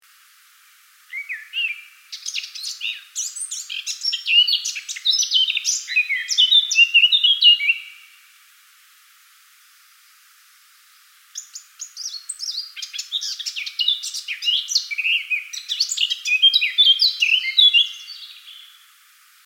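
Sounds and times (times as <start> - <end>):
male blackcap singing: 1.1 - 8.0, 11.4 - 18.8.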